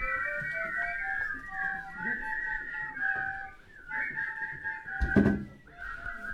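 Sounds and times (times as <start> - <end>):
faint room noise: 0.0 - 6.3
person whistling a melody: 0.0 - 6.3
dull thump: 5.0 - 5.6.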